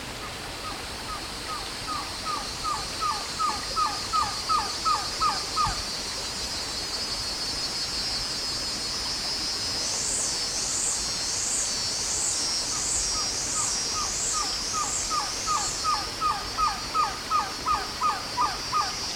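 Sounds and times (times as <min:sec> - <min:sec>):
Trogon viridis green-backed trogon calling: 0:00.2 - 0:05.8, 0:12.7 - 0:19.0.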